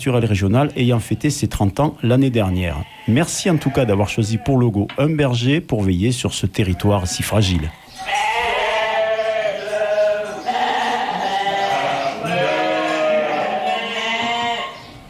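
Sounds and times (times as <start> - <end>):
speech: 0.0 - 8.3
flock of ewes bleating: 2.5 - 4.7, 6.6 - 15.0.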